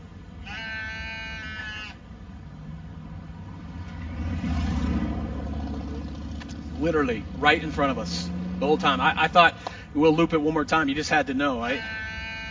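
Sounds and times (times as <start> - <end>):
sheep bleating in the back of a truck: 0.4 - 2.0, 11.5 - 12.5
truck engine rumble: 1.6 - 11.8
speech: 6.8 - 12.0.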